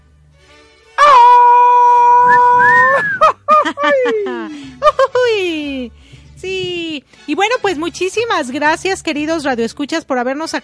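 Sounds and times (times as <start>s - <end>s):
Mexican grito shouted to celebrate Mexican Independence: 1.0s - 4.6s
laughter: 2.8s - 5.3s
speech: 7.5s - 10.6s.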